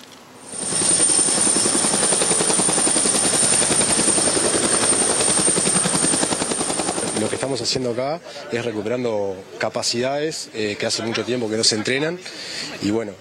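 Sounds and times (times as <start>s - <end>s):
helicopter rotor thumping with high engine whine, flying and landing in a city: 0.4s - 7.7s
speech: 7.2s - 13.2s.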